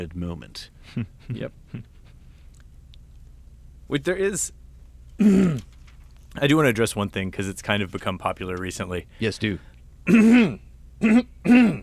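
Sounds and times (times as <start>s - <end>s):
speech: 0.0s - 1.9s, 3.9s - 4.6s, 5.2s - 5.8s, 6.4s - 11.8s
person clearing throat: 5.2s - 5.8s, 10.1s - 11.8s.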